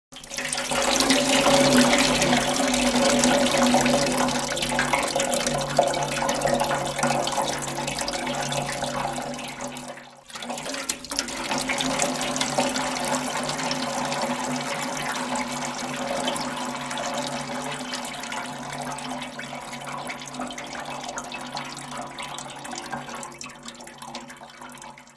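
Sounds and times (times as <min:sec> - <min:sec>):
water pouring into a metal trough: 0:00.1 - 0:25.1.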